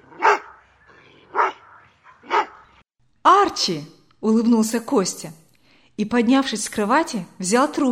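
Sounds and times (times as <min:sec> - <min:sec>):
dog barking: 0:00.0 - 0:00.7, 0:01.3 - 0:02.8
speech: 0:03.5 - 0:05.4, 0:06.0 - 0:07.9.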